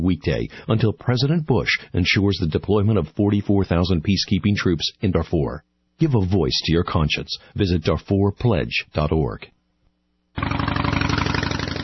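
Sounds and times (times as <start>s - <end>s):
speech: 0.0s - 9.6s
loud motorcycle engine revving: 10.4s - 11.8s.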